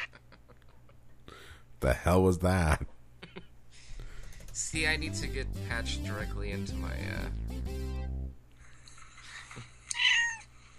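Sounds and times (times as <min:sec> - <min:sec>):
speech: 0:01.8 - 0:02.9, 0:04.6 - 0:07.6
cat meowing: 0:09.9 - 0:10.5.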